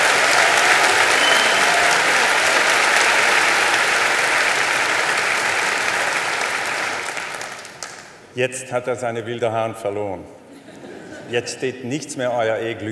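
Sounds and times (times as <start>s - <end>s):
laughter: 0.0s - 8.2s, 9.9s - 12.8s
audience applause: 0.0s - 8.3s
speech: 8.4s - 10.4s, 11.3s - 12.8s.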